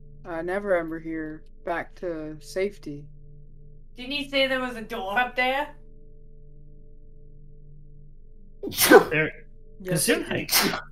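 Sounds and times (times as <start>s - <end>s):
speech: 0.2s - 3.2s, 4.0s - 5.8s, 8.6s - 10.9s
person sneezing: 8.6s - 9.3s, 10.2s - 10.8s.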